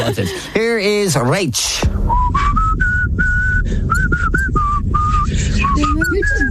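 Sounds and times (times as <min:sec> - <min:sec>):
speech: 0:00.0 - 0:02.6
steady low rumbling background: 0:00.0 - 0:06.4
person whistling a simple melody: 0:02.1 - 0:06.4.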